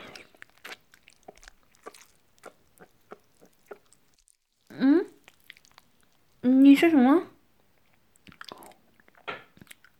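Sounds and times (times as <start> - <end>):
crisp crunching bites while eating dinner: 0.0 - 6.4
soft mouth sounds while chewing food: 0.0 - 6.5, 7.8 - 9.9
speech: 6.8 - 7.3.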